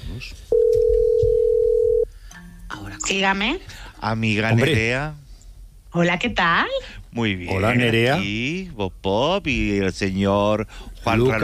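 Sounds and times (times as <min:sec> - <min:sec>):
speech: 0:00.2 - 0:00.6, 0:03.1 - 0:05.2, 0:06.0 - 0:11.4
steady telephone tone as a call is being placed: 0:00.5 - 0:02.1.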